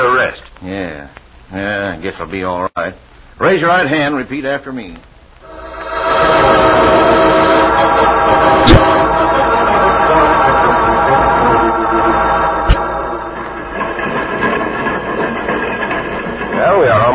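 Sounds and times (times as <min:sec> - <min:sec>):
speech: 0:00.3 - 0:05.1
train rumbling as it slows down: 0:05.4 - 0:17.1.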